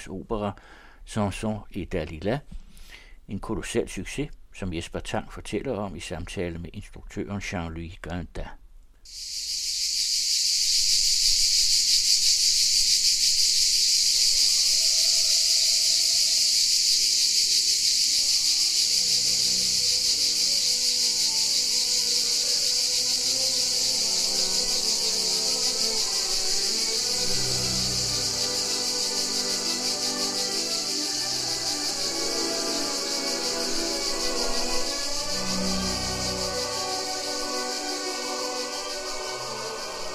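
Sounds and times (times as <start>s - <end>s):
speech: 0.0s - 9.8s
cicada chorus on a hot afternoon in Provence France: 9.1s - 40.1s.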